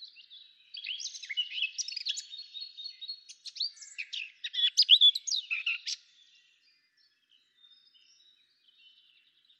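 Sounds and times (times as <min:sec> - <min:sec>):
Eurasian blackcap song: 0:00.0 - 0:06.1.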